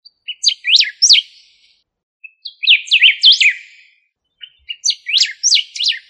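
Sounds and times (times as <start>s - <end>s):
bird song of sweeping up-and-down whistled notes: 0.0s - 6.0s.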